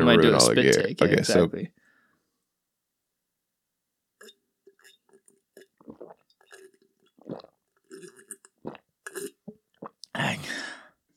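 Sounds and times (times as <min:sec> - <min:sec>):
speech: 0:00.1 - 0:01.8
person drinking water with quick wet gulps: 0:04.2 - 0:10.2.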